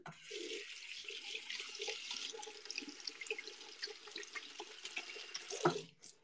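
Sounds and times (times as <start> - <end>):
water running from a tap at a sink: 0.1 - 6.1.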